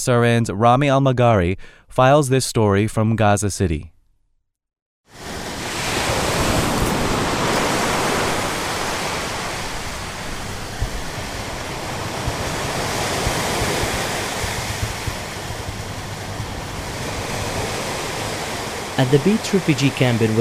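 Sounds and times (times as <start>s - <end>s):
speech: 0.0s - 3.9s, 19.0s - 20.4s
loud rush of water pouring and churning: 5.2s - 20.4s.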